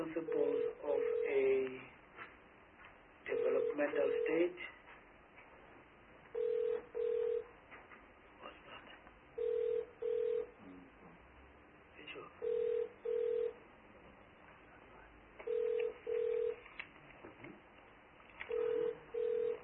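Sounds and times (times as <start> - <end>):
speech: 0.0 - 0.8, 3.8 - 4.8
phone ringing with electronic tone in a room: 0.0 - 1.6, 3.3 - 4.6, 6.3 - 7.5, 9.4 - 10.6, 12.4 - 13.6, 15.4 - 16.6, 18.5 - 19.6.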